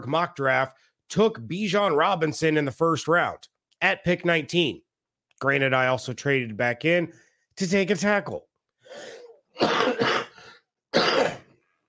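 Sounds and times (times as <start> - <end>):
speech: 0.0 - 4.8, 5.4 - 10.1
person coughing harshly: 8.9 - 11.6.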